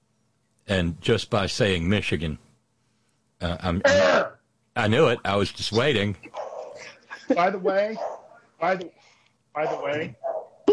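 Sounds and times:
speech: 0.7s - 2.4s, 3.4s - 10.3s
dog giving a drawn-out whining bark: 6.3s - 6.8s, 8.0s - 8.3s, 9.6s - 10.7s.

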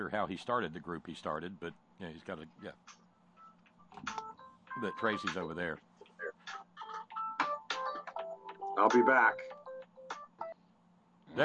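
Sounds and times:
speech: 0.1s - 3.0s, 3.9s - 5.9s, 8.8s - 9.5s
short spoken voice line mixed into the ringtone: 4.0s - 6.4s, 8.8s - 9.6s
phone ringtone melody of bright electronic beeps and chirps: 4.2s - 5.5s, 6.1s - 10.6s.

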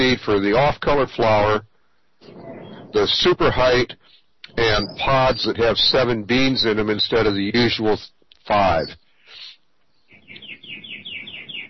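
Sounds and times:
low background rumble: 0.0s - 7.6s
speech: 0.1s - 9.0s
bird chirping: 1.9s - 3.2s, 3.9s - 7.8s, 8.4s - 11.6s.

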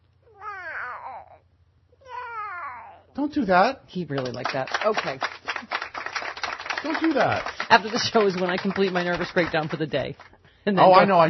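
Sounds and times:
voice imitating a sad cat meowing: 0.3s - 1.4s
speech: 3.2s - 5.8s, 6.8s - 11.2s.

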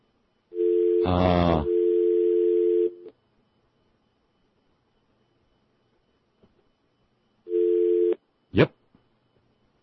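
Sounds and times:
speech: 1.0s - 1.7s, 8.6s - 8.8s
telephone dial tone on a newly fixed line: 1.7s - 3.1s, 7.5s - 8.2s.

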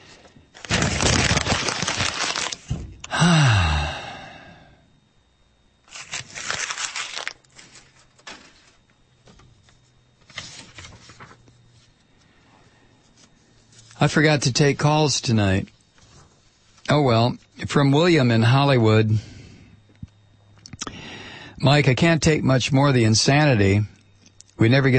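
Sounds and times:
paper being crumpled up: 0.5s - 2.7s, 5.9s - 8.8s, 9.6s - 11.9s
drawn-out vocal sigh: 3.0s - 4.9s
speech: 14.0s - 15.8s, 16.9s - 19.3s, 21.7s - 24.0s, 24.6s - 24.9s.

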